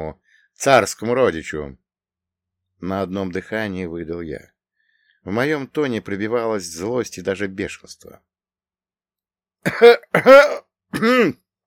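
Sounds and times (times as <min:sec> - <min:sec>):
speech: 0:00.0 - 0:01.8, 0:02.8 - 0:04.5, 0:05.2 - 0:08.3, 0:09.6 - 0:11.4
officer coughing: 0:09.7 - 0:11.4.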